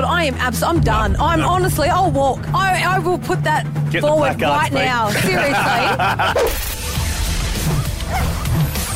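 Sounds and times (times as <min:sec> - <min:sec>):
speech: 0:00.2 - 0:06.8
laughter: 0:05.0 - 0:06.6
blue heeler cross puppy barking: 0:07.8 - 0:08.9.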